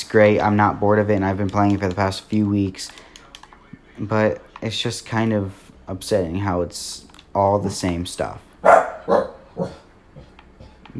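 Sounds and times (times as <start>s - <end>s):
speech: 0.1s - 3.1s, 4.0s - 9.8s
dog barking: 8.6s - 9.8s.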